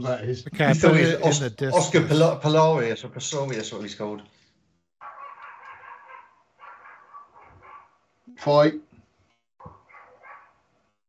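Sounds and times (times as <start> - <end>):
speech: 0.0 - 4.4, 8.4 - 8.9
laughter: 0.5 - 2.4
dog barking: 5.0 - 8.0, 9.6 - 10.6.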